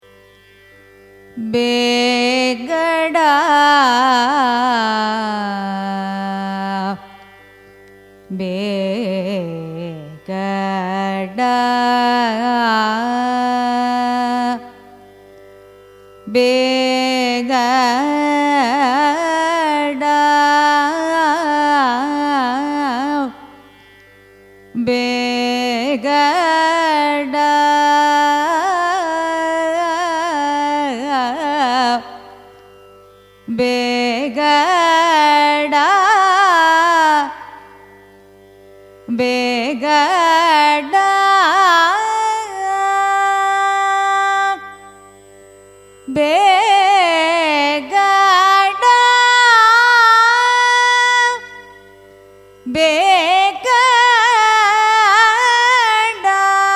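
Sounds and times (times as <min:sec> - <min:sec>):
Carnatic music in a raga: 0:00.0 - 0:56.7.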